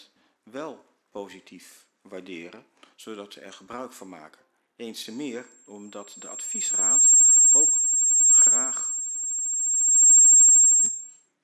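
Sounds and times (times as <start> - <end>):
speech: 0.5 - 6.9
long steady high-pitched electronic beep: 5.7 - 11.1.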